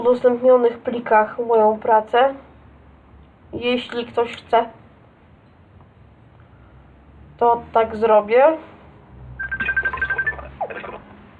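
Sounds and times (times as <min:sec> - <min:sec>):
speech: 0:00.0 - 0:02.5, 0:03.5 - 0:04.8, 0:07.4 - 0:08.7
incoming call ringing on a messaging app on a phone: 0:09.4 - 0:11.0.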